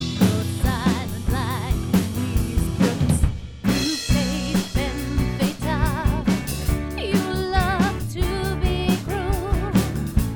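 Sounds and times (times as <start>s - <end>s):
singing voice: 0.0s - 10.0s.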